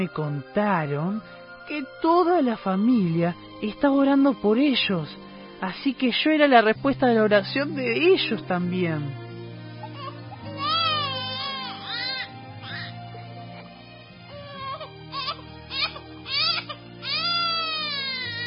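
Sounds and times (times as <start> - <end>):
speech: 0.0 - 9.2
baby crying after a vaccine injection: 9.8 - 18.4.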